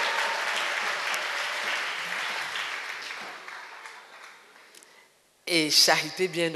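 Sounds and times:
crowd of people clapping: 0.0s - 5.0s
speech: 5.5s - 6.5s.

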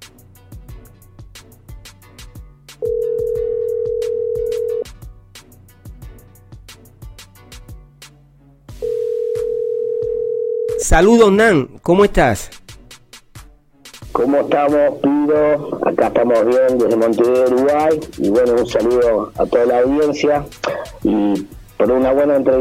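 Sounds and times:
regular rhythmic music beat: 0.0s - 8.3s, 11.9s - 22.5s
outgoing telephone call ringback tones: 2.8s - 4.9s, 8.8s - 10.8s
speech: 10.9s - 12.6s, 14.2s - 22.5s.

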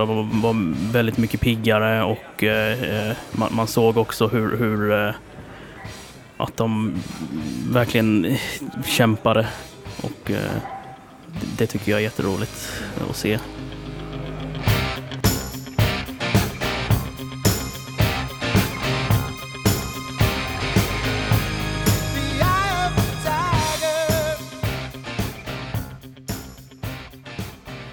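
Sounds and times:
speech: 0.0s - 5.4s, 6.4s - 13.6s
1980s rock song with drums and guitar: 12.4s - 27.9s.

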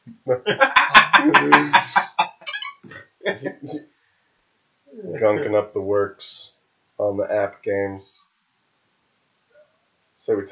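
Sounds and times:
speech: 0.2s - 2.1s, 5.2s - 8.3s, 10.2s - 10.5s
laughter: 0.3s - 3.8s, 5.2s - 5.5s
person imitating chicken clucking: 0.8s - 2.9s.

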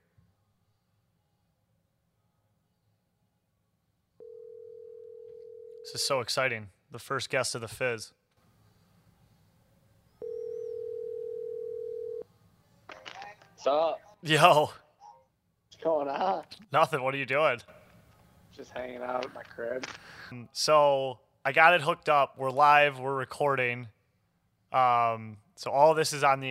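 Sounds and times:
low hum: 0.0s - 26.4s
telephone ringback tone: 4.2s - 5.9s, 10.2s - 12.2s
speech: 5.8s - 8.2s, 13.6s - 14.8s, 15.8s - 17.8s, 18.6s - 24.0s, 24.7s - 26.4s.

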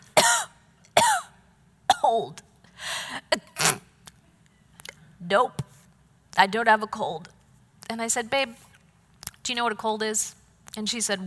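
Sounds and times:
speech: 2.1s - 2.5s, 5.2s - 5.7s, 6.4s - 8.7s, 9.5s - 11.2s
person sneezing: 3.2s - 3.9s
person sniffing: 3.5s - 3.8s.

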